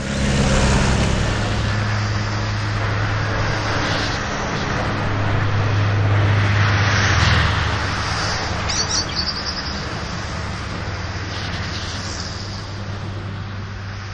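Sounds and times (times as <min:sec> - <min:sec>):
airplane engines roaring: 0:00.0 - 0:14.1
mountain woodland soundscape: 0:08.1 - 0:10.4.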